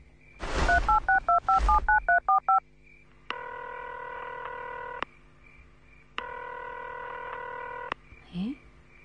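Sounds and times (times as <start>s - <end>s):
phone keypad beeps dialing a number: 0.8s - 2.6s.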